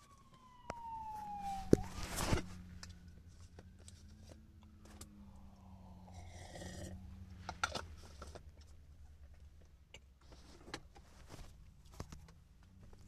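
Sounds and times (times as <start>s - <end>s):
emergency vehicle sirens wailing: 0.0s - 8.0s
passing traffic noise: 0.3s - 9.8s.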